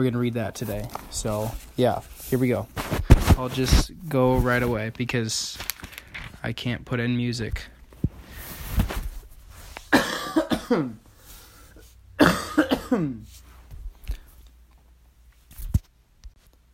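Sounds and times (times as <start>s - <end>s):
speech: 0.0s - 5.7s, 6.4s - 7.8s, 10.7s - 11.1s, 12.9s - 13.4s
person coughing: 9.9s - 11.0s, 12.2s - 13.3s.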